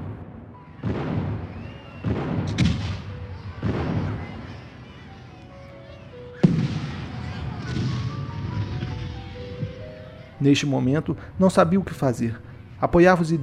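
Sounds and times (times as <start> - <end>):
heavy cannon shots across a bay bombarding a fort: 0.0 - 5.1, 6.4 - 9.8
speech: 10.4 - 13.4.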